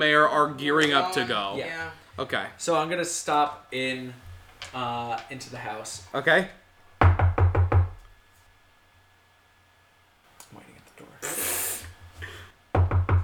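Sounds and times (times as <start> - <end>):
speech: 0.0 - 6.6
knocking on a wooden house door: 7.0 - 8.1, 12.7 - 13.2.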